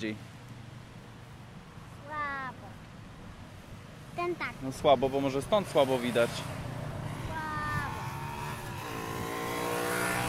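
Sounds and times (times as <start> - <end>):
speech: 0.0 - 0.3, 4.2 - 6.6
small motor scooter engine passing by: 5.5 - 10.2.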